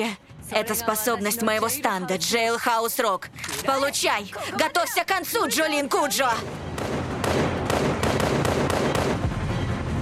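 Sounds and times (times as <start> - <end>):
speech: 0.0 - 6.7
dense rumbling noise: 0.0 - 10.0
sharp loud gunshots: 6.4 - 9.8.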